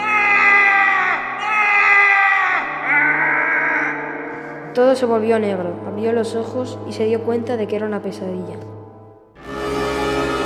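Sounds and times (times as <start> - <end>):
tied-up monstrous creature screaming: 0.0 - 4.2
speech: 4.8 - 8.7.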